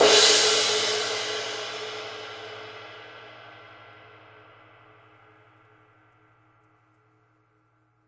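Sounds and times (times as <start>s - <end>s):
big ride cymbal crash single hits: 0.0s - 2.6s.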